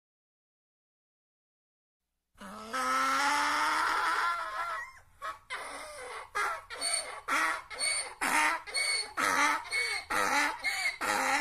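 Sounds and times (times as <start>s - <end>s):
donkey braying: 2.4s - 11.3s.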